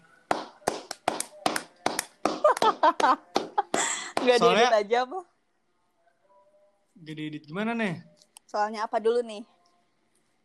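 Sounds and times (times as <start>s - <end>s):
sharp hand claps: 0.3s - 4.5s
laughter: 2.4s - 4.4s
speech: 2.8s - 3.5s, 4.2s - 5.4s, 7.0s - 9.6s.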